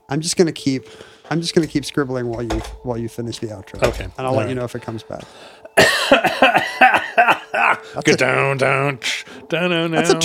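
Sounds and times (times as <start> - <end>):
speech: 0.1 - 10.2
wet hacking coughs: 5.8 - 8.0
strained drawn-out voiced sound: 9.9 - 10.2.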